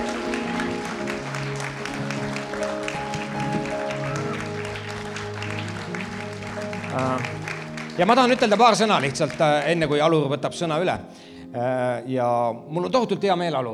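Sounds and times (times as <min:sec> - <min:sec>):
audience applause: 0:00.0 - 0:10.3
sustained music playing: 0:00.0 - 0:13.7
speech: 0:08.0 - 0:13.7.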